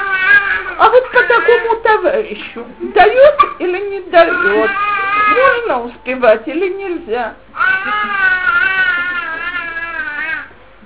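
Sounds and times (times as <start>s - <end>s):
baby crying loudly in a long wail: 0.0s - 1.8s, 4.2s - 5.6s, 7.6s - 10.6s
speech: 1.5s - 8.3s.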